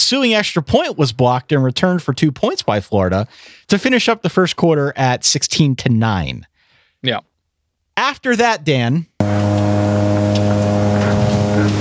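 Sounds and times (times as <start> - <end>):
speech: 0.1 - 7.3, 8.0 - 9.6
motorboat racing sound effect engine drone: 9.2 - 11.8.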